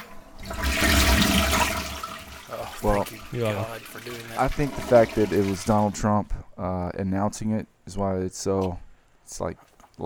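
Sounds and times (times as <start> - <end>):
toilet flushing: 0.0 - 6.3
speech: 2.8 - 10.0.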